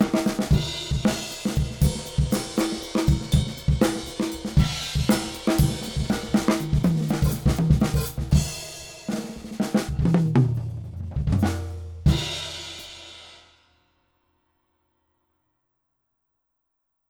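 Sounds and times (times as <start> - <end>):
old school acoustic drums: 0.0 - 13.6.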